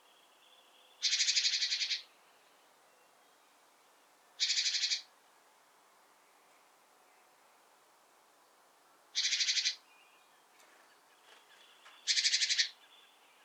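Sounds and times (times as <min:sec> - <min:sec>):
great tit Parus major giving dry buzzy churr calls: 0:01.0 - 0:02.1, 0:04.4 - 0:05.1, 0:09.2 - 0:09.8, 0:12.1 - 0:12.8.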